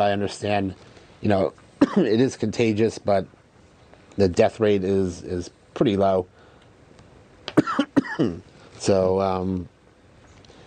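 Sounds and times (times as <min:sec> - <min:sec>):
speech: 0:00.0 - 0:03.4, 0:04.2 - 0:06.4, 0:08.2 - 0:09.7
harsh coughing: 0:01.8 - 0:02.1, 0:07.6 - 0:08.4.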